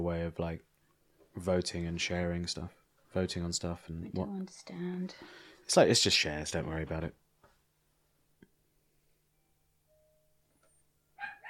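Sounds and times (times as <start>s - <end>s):
speech: 0.0s - 0.7s, 1.4s - 7.2s
soft electronic tone: 9.4s - 10.8s
dog barking: 11.2s - 11.4s.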